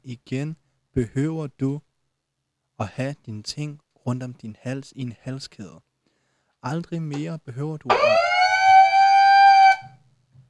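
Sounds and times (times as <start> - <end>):
speech: 0.0 - 1.9, 2.8 - 5.9, 6.6 - 8.3
electronic siren tone from a toy microphone: 7.9 - 10.0.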